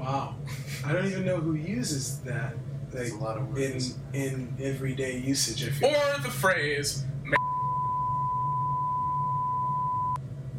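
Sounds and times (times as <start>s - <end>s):
low hum: 0.0s - 10.5s
speech: 0.3s - 7.2s
censorship bleep tone: 7.4s - 10.2s.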